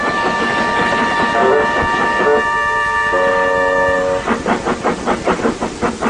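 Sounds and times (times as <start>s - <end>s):
steam engine whistle-like tone: 0.0s - 4.4s
rumbling rail noise: 0.0s - 6.0s
steam engine chuffing while shunting freight cars: 0.0s - 6.0s.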